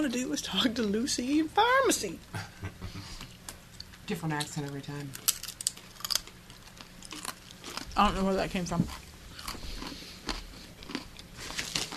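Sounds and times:
speech: 0.0s - 2.7s, 4.1s - 5.3s, 8.0s - 9.0s
crunchy food being chewed: 5.0s - 11.9s.

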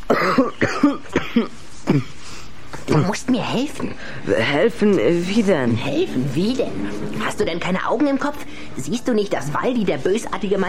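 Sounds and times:
harsh hacking coughs: 0.0s - 2.2s
speech: 0.1s - 1.2s, 1.9s - 2.1s, 3.0s - 10.6s.

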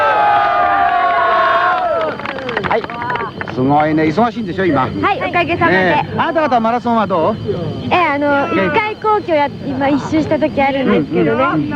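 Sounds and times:
studio audience cheering on a radio programme: 0.0s - 3.6s
speech: 3.6s - 11.7s.

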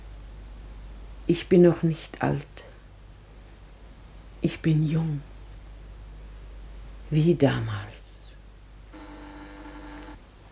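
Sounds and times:
constant low hiss: 0.0s - 10.5s
speech: 1.3s - 2.7s, 4.4s - 5.3s, 7.1s - 8.0s
telephone ringing: 9.0s - 10.2s.

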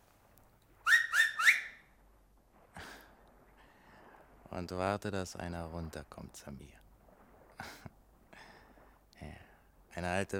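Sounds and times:
shrill finger whistles: 0.9s - 1.8s
speech: 4.6s - 6.8s, 10.0s - 10.3s.

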